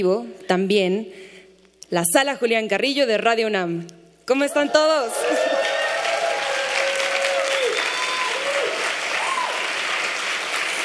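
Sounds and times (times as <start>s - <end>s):
speech: 0.0s - 1.3s, 1.9s - 5.5s
people cheering and whooping: 4.5s - 10.1s
live concert audience applauding: 5.2s - 10.8s.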